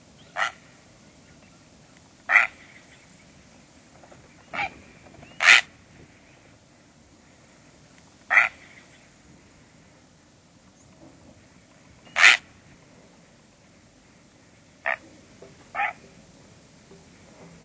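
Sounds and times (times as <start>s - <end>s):
Great Blue Heron calling: 0.2s - 3.4s, 4.3s - 6.5s, 8.2s - 9.2s, 12.0s - 12.8s, 14.8s - 16.2s.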